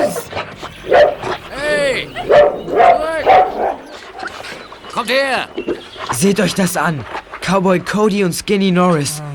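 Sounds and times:
dogs barking: 0.0 - 6.2
speech: 5.2 - 9.2.

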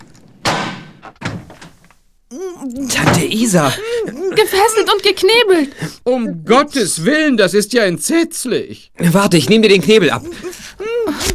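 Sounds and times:
heavy hotel room door thunk: 0.4 - 1.7
speech: 2.3 - 11.3.

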